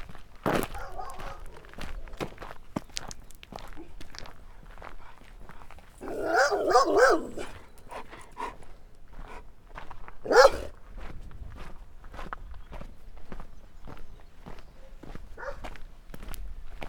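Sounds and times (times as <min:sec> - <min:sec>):
dog barking: 0:00.7 - 0:01.7, 0:06.0 - 0:07.6, 0:10.2 - 0:10.7, 0:15.4 - 0:15.8.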